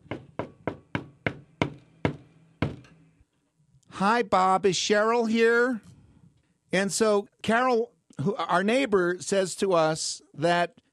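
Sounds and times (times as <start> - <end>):
neighbor knocking on a wooden door: 0.0 - 2.8
speech: 4.0 - 5.9, 6.7 - 10.8.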